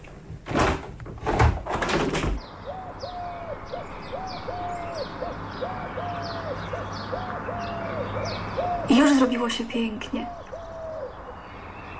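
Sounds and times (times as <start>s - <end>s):
blackbirds singing in the distance outdoors: 2.0s - 11.9s
sparrows chirping in the distance outdoors: 2.4s - 11.9s
speech: 9.2s - 10.4s.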